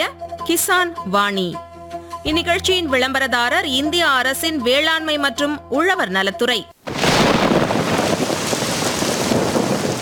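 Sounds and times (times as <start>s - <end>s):
speech: 0.5s - 6.8s
deep rumble of thunder: 6.9s - 9.9s
heavy rain that damages crops pouring: 6.9s - 9.9s.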